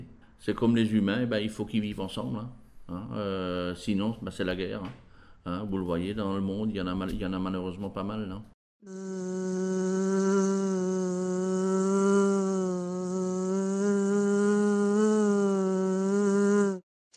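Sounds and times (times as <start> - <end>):
speech: 0.4 - 9.6
bees buzzing: 8.9 - 16.8.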